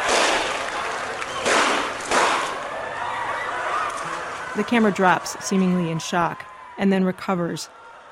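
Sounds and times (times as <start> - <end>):
gunshots in film footage: 0.0 - 2.6
noisy crowded outdoor background: 0.0 - 8.1
speech: 4.6 - 7.8.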